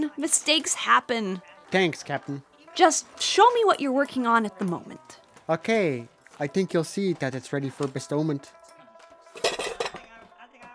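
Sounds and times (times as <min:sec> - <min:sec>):
speech: 0:00.0 - 0:08.6
metal pots and pans clanking together: 0:09.4 - 0:10.0.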